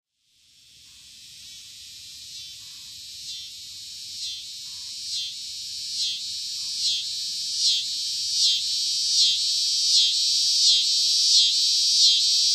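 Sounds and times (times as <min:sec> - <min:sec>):
scissor-grinder cicada buzzing trill: 0:00.2 - 0:12.5.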